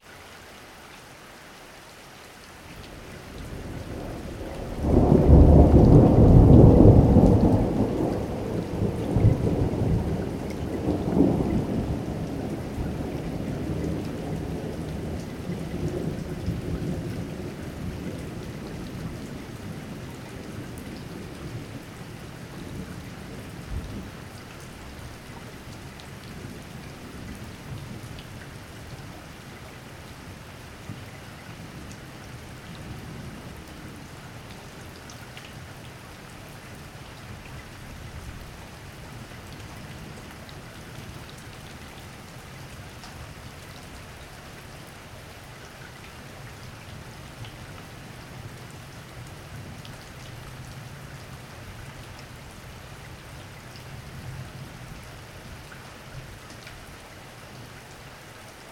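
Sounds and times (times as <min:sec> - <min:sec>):
light rain: 0:00.0 - 0:58.7
thunder: 0:04.0 - 0:18.8.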